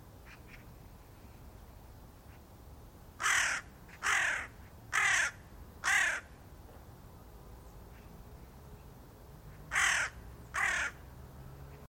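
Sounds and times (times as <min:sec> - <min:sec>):
bird uttering loud raspy caws: 0:00.2 - 0:00.7, 0:03.2 - 0:06.4, 0:09.5 - 0:11.1.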